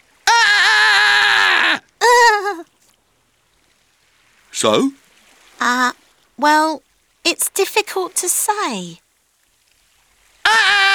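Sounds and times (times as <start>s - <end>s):
person screaming in open air above water surface: 0.3s - 2.6s, 10.5s - 10.9s
speech: 4.6s - 5.0s, 5.6s - 9.0s.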